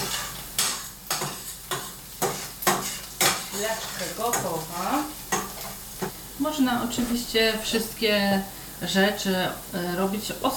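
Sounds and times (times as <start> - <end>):
stirring onion frying in a pan: 0.0 - 6.2
onion frying in a pan: 0.0 - 10.5
speech: 3.6 - 5.2, 6.4 - 10.5.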